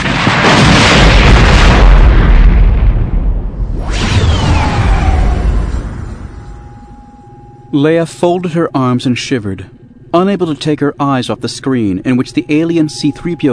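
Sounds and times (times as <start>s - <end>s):
gutted gunship exploding in a science-fiction space battle: 0.0s - 7.7s
descending whistle-like whooshing tones: 3.6s - 7.7s
speech: 7.7s - 13.5s.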